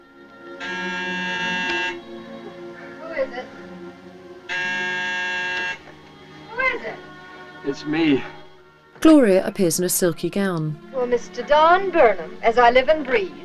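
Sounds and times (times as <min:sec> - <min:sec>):
electric door buzzer at a screened door: 0:00.6 - 0:02.0, 0:04.5 - 0:05.8
speech: 0:07.7 - 0:08.4, 0:09.0 - 0:13.4.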